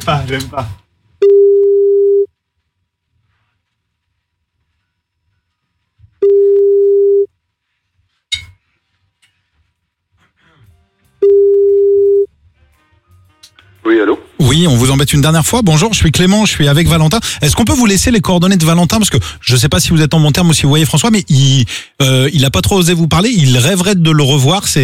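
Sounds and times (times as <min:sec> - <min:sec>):
speech: 0:00.0 - 0:00.8, 0:13.9 - 0:24.8
telephone ringing tones on an outgoing call: 0:01.2 - 0:02.3, 0:06.2 - 0:07.3, 0:11.2 - 0:12.3.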